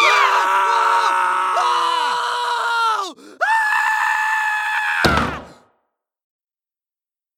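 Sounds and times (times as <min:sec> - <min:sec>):
several people screaming: 0:00.0 - 0:05.6.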